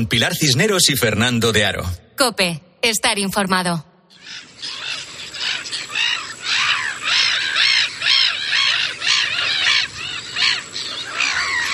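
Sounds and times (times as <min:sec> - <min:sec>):
speech: 0:00.0 - 0:04.7
flock of black-headed gulls calling: 0:04.1 - 0:11.7.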